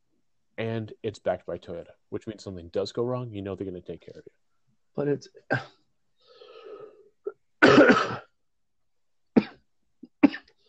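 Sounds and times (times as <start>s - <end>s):
speech: 0.6s - 5.8s
coughing fit: 5.5s - 5.8s, 7.3s - 8.4s, 9.4s - 10.6s.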